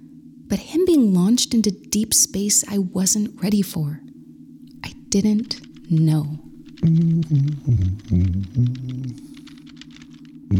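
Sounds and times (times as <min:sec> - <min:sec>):
speech: 0:00.5 - 0:04.1, 0:05.1 - 0:09.3
keypad keys clicking while typing a password: 0:05.2 - 0:10.4.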